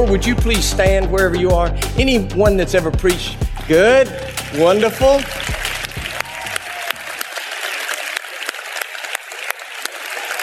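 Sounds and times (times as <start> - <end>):
speech: 0.0 - 5.6
audience applauding: 3.6 - 10.4.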